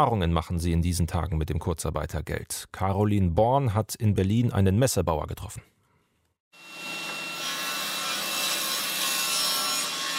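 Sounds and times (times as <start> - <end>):
speech: 0.0 - 5.8
table saw cutting wood: 6.6 - 10.1.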